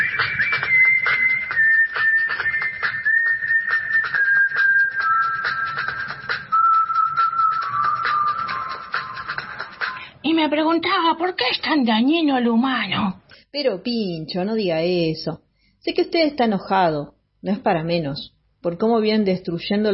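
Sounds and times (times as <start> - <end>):
person whistling a song while walking: 0.0 - 10.0
speech: 10.4 - 19.9.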